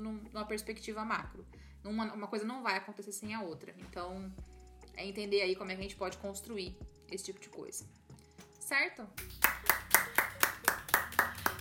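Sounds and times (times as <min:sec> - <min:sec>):
speech: 0:00.4 - 0:08.0, 0:08.7 - 0:09.7
single person clapping: 0:09.2 - 0:11.5.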